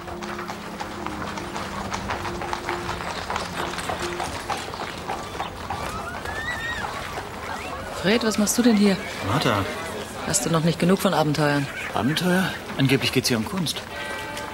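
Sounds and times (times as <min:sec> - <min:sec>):
hooves of a horse-drawn cart clip-clopping through a town gate: 0:00.0 - 0:14.5
horse-drawn cart wheels rumbling: 0:00.0 - 0:14.5
speech: 0:08.0 - 0:13.9.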